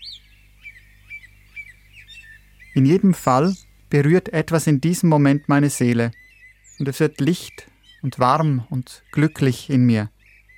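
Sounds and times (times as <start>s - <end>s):
birds singing in a forest: 0.0s - 10.5s
low steady hum: 0.0s - 10.5s
speech: 2.8s - 6.2s, 6.8s - 10.2s.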